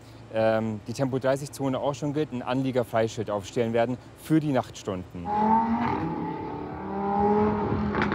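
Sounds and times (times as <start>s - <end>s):
speech: 0.3s - 6.4s
car engine revving while cruising: 5.2s - 8.1s.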